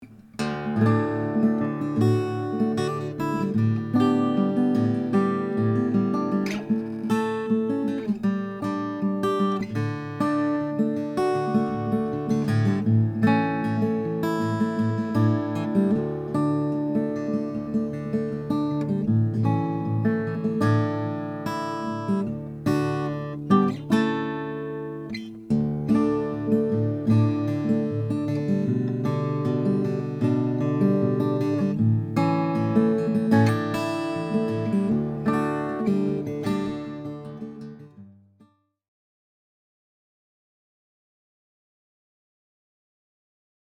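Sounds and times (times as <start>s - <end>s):
mahogany 00 acoustic guitar: 0.0s - 38.5s.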